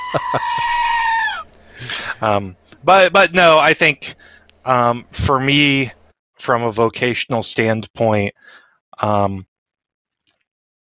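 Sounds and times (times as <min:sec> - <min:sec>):
screaming goat novelty toy scream: 0:00.0 - 0:01.5
speech: 0:00.1 - 0:00.7, 0:02.2 - 0:09.5.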